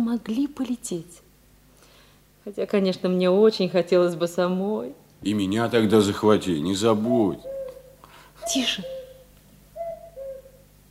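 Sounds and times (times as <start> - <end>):
speech: 0.0 - 1.2, 2.4 - 7.5, 8.4 - 9.0
two-note cuckoo call: 7.2 - 10.7.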